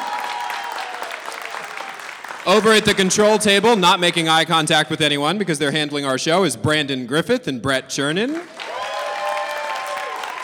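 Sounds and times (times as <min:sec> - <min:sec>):
audience applauding: 0:00.0 - 0:05.6, 0:08.3 - 0:10.4
speech: 0:02.4 - 0:08.6.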